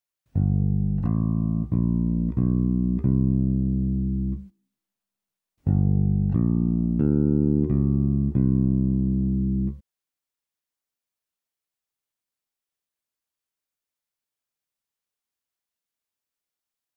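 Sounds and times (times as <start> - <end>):
bass playing a chromatic approach: 0.4 - 4.5, 5.7 - 9.8.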